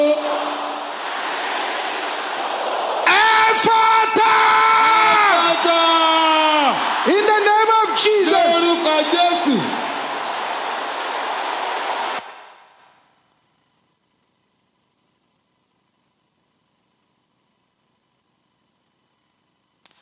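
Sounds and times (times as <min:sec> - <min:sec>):
audience shouting and whooping at a prayer meeting: 0:00.0 - 0:12.6.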